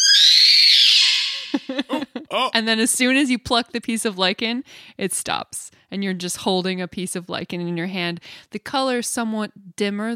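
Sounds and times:
loud piercing high-pitched scream: 0.0s - 1.6s
laughter: 1.3s - 2.6s
speech: 1.4s - 10.1s.

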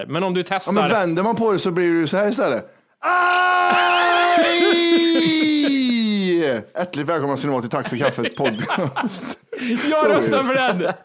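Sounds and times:
speech: 0.0s - 11.0s
person screaming: 3.0s - 6.6s
laughter: 3.7s - 6.6s, 7.5s - 11.0s.

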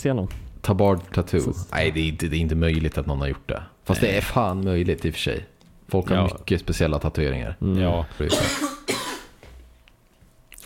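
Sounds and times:
speech: 0.0s - 9.0s
person coughing harshly: 8.2s - 9.4s.

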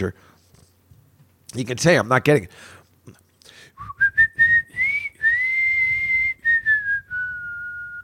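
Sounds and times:
speech: 0.0s - 0.3s, 1.5s - 3.2s
person whistling a song melody: 3.8s - 8.0s.

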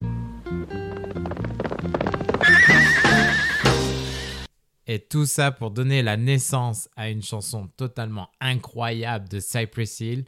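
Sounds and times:
horse whinnying with a shrill wavering neigh: 0.7s - 4.5s
speech: 4.9s - 10.2s.

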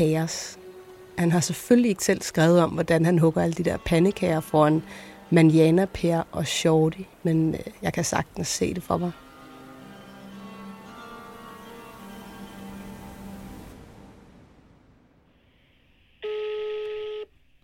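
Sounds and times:
speech: 0.0s - 0.6s, 1.2s - 9.2s
steady buzzy electronic telephone tone: 16.2s - 17.3s.

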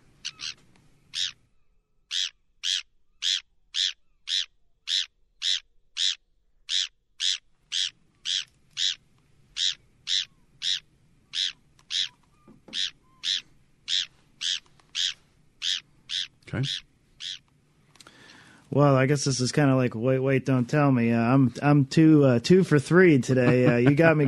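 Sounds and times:
Bonaparte's gull giving short raspy calls: 0.2s - 1.4s, 2.1s - 9.0s, 9.6s - 17.4s
speech: 16.6s - 16.8s, 18.8s - 24.2s
laughter: 23.3s - 24.2s.

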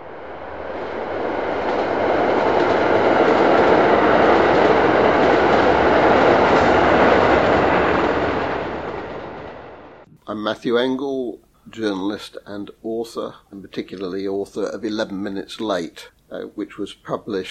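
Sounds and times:
train rumbling along rails: 0.0s - 10.1s
speech: 10.5s - 17.5s.

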